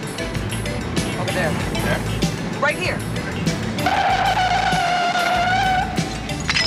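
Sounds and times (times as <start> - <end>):
car driving down an industrial alley and stopping: 0.0 - 6.6
speech: 1.4 - 4.3.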